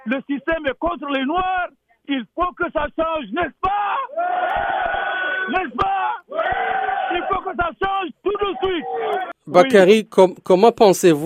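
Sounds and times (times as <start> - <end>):
speech: 0.0 - 6.2, 7.3 - 11.2
protest crowd chanting and shouting against police violence: 3.4 - 9.4.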